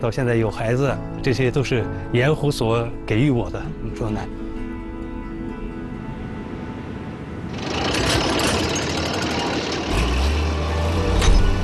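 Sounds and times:
speech: 0.0s - 4.4s
excavator engine starting and running at a salt lake: 7.4s - 11.6s
rattling mechanical clatter: 7.5s - 10.4s.

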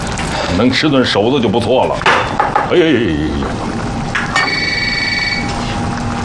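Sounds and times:
steady hum: 0.0s - 6.2s
speech: 0.6s - 3.7s
telephone ringing with electronic trill: 4.3s - 5.6s.

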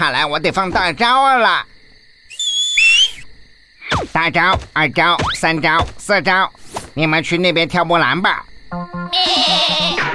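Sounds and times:
speech: 0.1s - 1.7s, 3.9s - 10.0s
sheep bleating: 9.1s - 10.0s.

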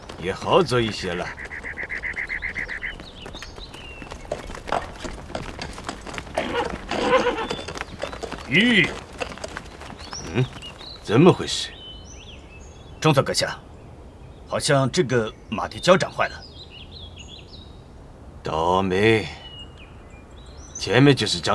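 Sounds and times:
horse with a damaged hoof or worn shoe clip-clopping on a road: 0.0s - 11.6s
speech: 0.2s - 1.6s, 8.5s - 9.0s, 10.4s - 11.8s, 13.0s - 13.6s, 14.5s - 16.4s, 18.5s - 19.4s, 20.8s - 21.5s.

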